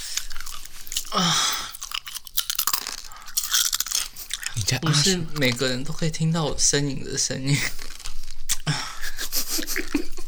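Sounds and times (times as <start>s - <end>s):
chewing crisp food crunching: 0.0s - 6.1s, 7.6s - 8.7s
speech: 1.1s - 1.6s, 4.7s - 7.9s
laughter: 8.7s - 10.2s.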